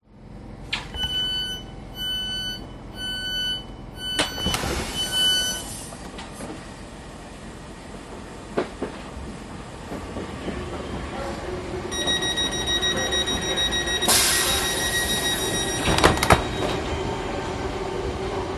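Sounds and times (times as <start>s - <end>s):
London train door opening and closing: 0.7s - 7.0s, 7.8s - 18.5s.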